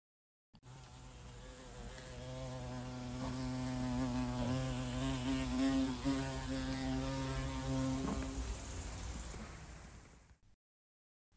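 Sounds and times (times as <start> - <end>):
Asian mortar bee buzzing in flight: 0.6 - 8.8.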